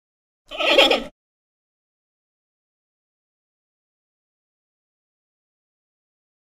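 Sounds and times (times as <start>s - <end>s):
panda bleat: 0.5s - 1.1s.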